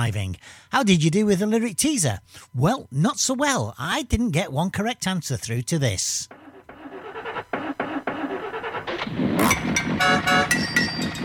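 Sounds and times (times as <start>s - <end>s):
speech: 0.0s - 6.4s
old car engine cranking and sputtering into a rough run: 6.3s - 11.2s
old car horn honking: 9.4s - 11.2s.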